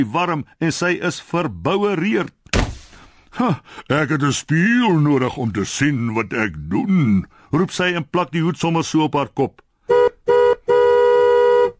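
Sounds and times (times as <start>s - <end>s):
speech: 0.0s - 2.4s, 3.3s - 9.6s
taxi horn honking: 9.9s - 11.7s.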